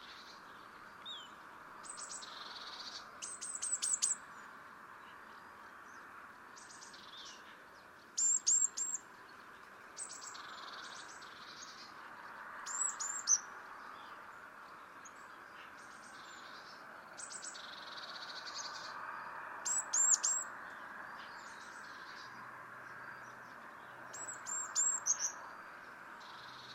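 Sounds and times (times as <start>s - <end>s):
steady background noise: 0.0s - 26.7s
Eurasian blue tit (Cyanistes caeruleus) calling with buzzy churring bursts: 1.8s - 4.2s, 8.2s - 9.0s, 12.7s - 13.4s, 17.2s - 18.8s, 19.6s - 20.5s, 24.1s - 25.4s.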